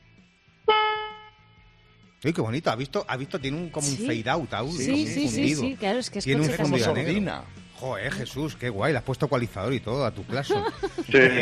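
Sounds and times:
car horn honk: 0:00.6 - 0:01.7
speech: 0:02.2 - 0:11.4
laughter: 0:10.3 - 0:11.4.

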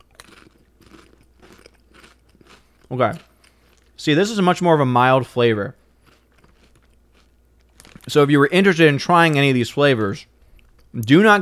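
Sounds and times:
Italian red meat flavored chips crunched and chewed: 0:00.0 - 0:04.0, 0:06.0 - 0:08.2
speech: 0:02.9 - 0:03.3, 0:04.0 - 0:05.8, 0:08.1 - 0:10.3, 0:10.9 - 0:11.4.

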